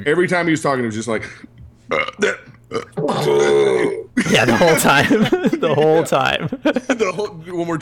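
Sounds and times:
speech: 0.0s - 7.8s
loud croaky burps: 1.9s - 4.1s
laughter: 4.2s - 7.6s.

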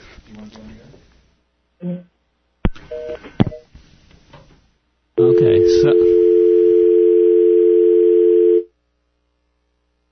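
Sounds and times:
telephone line noise: 5.2s - 8.6s
telephone busy signal: 5.2s - 8.7s.

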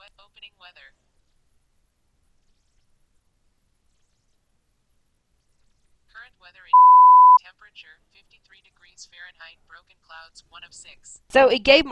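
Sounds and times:
voice assistant listening beep: 6.7s - 7.4s
speech: 7.7s - 11.9s.

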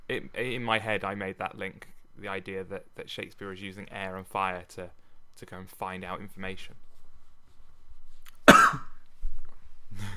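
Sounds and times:
speech: 0.1s - 6.9s
person coughing: 8.4s - 9.0s.

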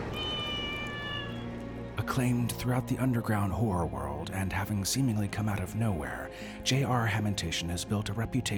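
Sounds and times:
cat meowing: 0.1s - 1.6s
speech: 2.1s - 8.5s.

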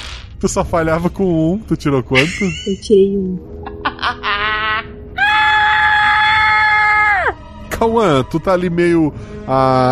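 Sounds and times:
speech: 0.4s - 4.4s, 7.8s - 9.9s
laughter: 3.6s - 4.9s
performed scream of a frightened character: 4.6s - 7.4s.

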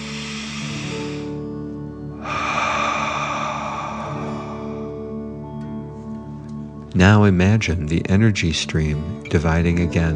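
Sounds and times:
deep breath in and out during a guided breathing exercise: 0.0s - 6.0s
soft sustained music: 0.0s - 10.1s
speech: 7.0s - 10.1s.

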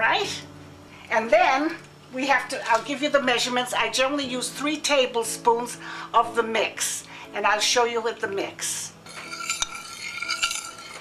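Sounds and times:
speech: 0.0s - 9.0s
utensil scraping and clinking while stirring blintz batter of flour and liquid: 9.0s - 10.9s.

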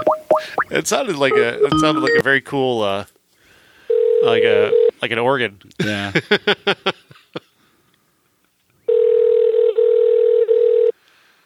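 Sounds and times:
speech: 0.0s - 3.2s, 4.2s - 7.2s
telephone keypad beeps dialing a number: 1.3s - 2.3s
steady loud phone tone: 1.3s - 2.4s, 3.9s - 4.9s, 8.9s - 10.9s.

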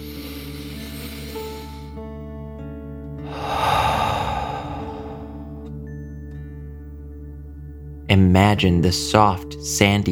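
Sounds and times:
deep breath in and out during a calming children's meditation: 3.2s - 5.8s
speech: 8.1s - 10.1s.

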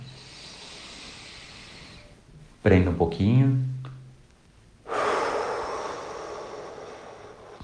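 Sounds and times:
deep breath released during a breathing exercise: 0.0s - 2.2s, 4.8s - 7.6s
deep inhale: 0.0s - 2.2s, 4.8s - 7.6s
speech: 2.6s - 3.7s.

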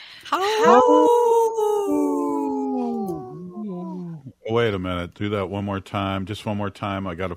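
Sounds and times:
speech: 0.3s - 2.0s, 4.5s - 7.3s
wolf howling: 0.5s - 4.3s.

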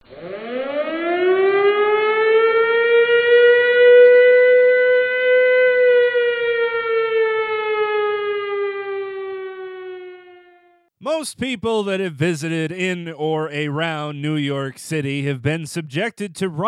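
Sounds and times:
siren wailing: 0.0s - 10.9s
speech: 11.2s - 16.6s.

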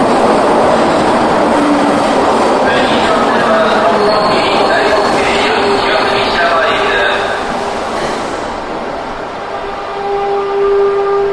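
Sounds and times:
train roaring past with screeching whining metallic tones: 0.0s - 11.3s.

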